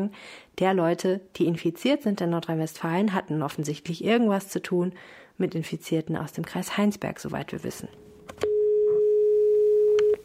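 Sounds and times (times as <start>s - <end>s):
speech: 0.0s - 8.5s
steady ringback tone of an outgoing phone call: 8.4s - 10.2s
small clicks and phone line noise: 9.9s - 10.2s.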